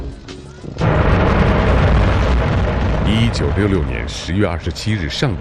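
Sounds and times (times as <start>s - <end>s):
Dongfeng-2A missile launching: 0.8s - 5.3s
speech: 3.2s - 5.3s.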